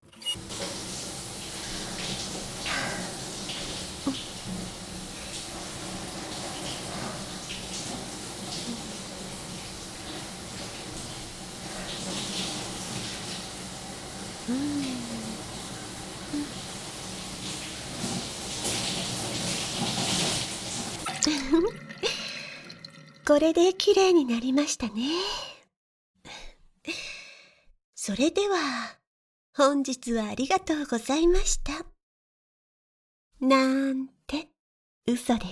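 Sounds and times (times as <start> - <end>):
water running while someone is rinsed off after washing: 0.4 - 25.2
speech: 23.3 - 25.4, 28.1 - 29.0, 29.6 - 31.9, 33.4 - 34.5, 35.1 - 35.4.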